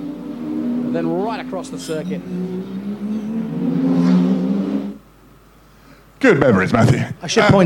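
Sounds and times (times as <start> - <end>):
race car engine revving on a racing circuit: 0.0 - 5.1
speech: 0.9 - 3.1, 6.2 - 7.6.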